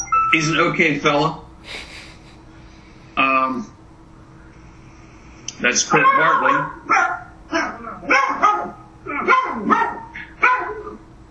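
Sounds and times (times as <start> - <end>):
speech: 0.3 - 1.9, 5.6 - 8.2
dog barking: 5.9 - 11.0.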